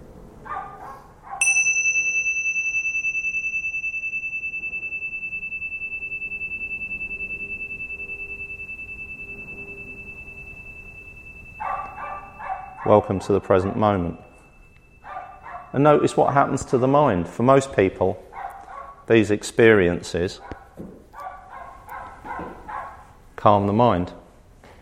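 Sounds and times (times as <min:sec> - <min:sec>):
meditation bell ringing: 0:01.4 - 0:17.1
speech: 0:12.9 - 0:14.2, 0:15.7 - 0:18.3, 0:19.1 - 0:20.9, 0:23.4 - 0:24.2.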